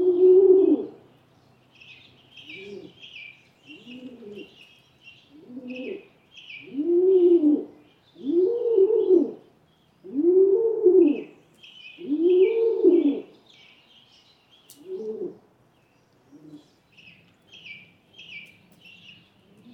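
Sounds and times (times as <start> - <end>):
rock pigeon cooing: 0.0 - 1.0, 2.4 - 4.7, 5.3 - 9.4, 10.0 - 11.3, 12.0 - 13.3, 14.7 - 15.4, 19.4 - 19.7
faint high twittering of other birds: 0.6 - 10.4, 11.0 - 19.7.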